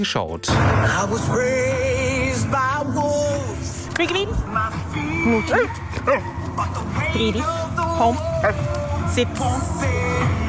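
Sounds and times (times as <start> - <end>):
speech: 0.0 - 3.0, 4.0 - 10.3
dog barking and yipping excitedly: 5.4 - 6.4.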